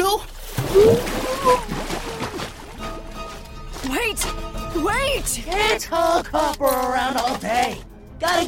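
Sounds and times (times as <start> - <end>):
water splashing and sloshing as someone is held underwater: 0.0 - 8.4
wavering vocal cries and gurgles of someone held underwater: 0.7 - 2.6
speech: 5.2 - 8.4.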